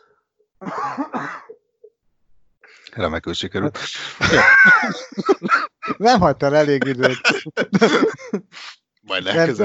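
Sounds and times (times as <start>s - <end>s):
person coughing after swallowing water the wrong way: 0.6s - 1.6s
speech: 2.9s - 9.6s
laughter: 4.0s - 8.6s.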